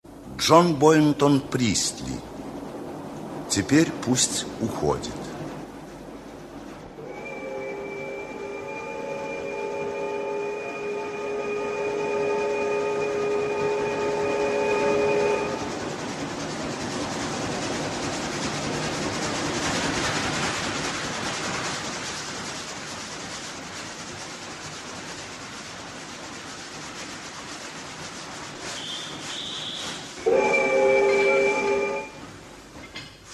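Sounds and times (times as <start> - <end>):
suburban train rumbling along the rails: 0.0 - 33.3
speech: 0.4 - 2.3, 3.5 - 5.3
suburban train horn sounding a long chord: 7.0 - 15.7, 28.7 - 32.3.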